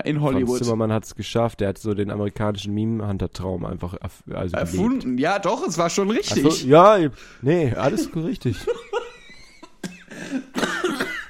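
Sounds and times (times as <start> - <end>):
speech: 0.0 - 9.0
laughter: 7.8 - 11.1
rough phlegmy smoker's cough: 9.8 - 11.2.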